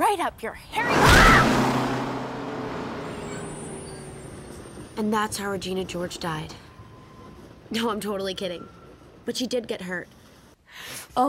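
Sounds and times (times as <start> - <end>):
speech: 0.1 - 1.7, 5.0 - 6.6, 7.7 - 11.2
bus engine rumbling: 0.8 - 7.2
high bus brake squeal: 0.8 - 7.8.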